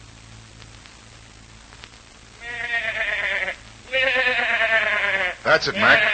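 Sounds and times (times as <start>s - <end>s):
goat bleating: 2.4s - 6.1s
speech: 5.5s - 6.1s.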